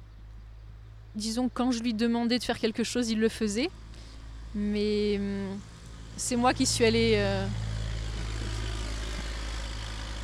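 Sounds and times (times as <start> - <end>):
speech: 1.2 - 3.8, 4.5 - 7.6
tractor engine droning outside: 2.8 - 10.2.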